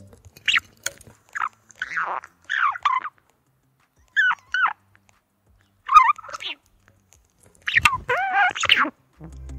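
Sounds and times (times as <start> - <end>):
budgerigar screeching in short harsh high-pitched bursts: 0.4 - 0.7, 1.3 - 3.2, 4.1 - 4.8, 5.8 - 6.7, 7.6 - 9.0.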